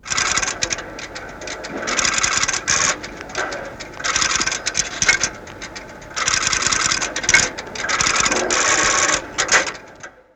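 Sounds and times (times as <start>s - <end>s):
telephone relay switching on: 0.0s - 10.2s.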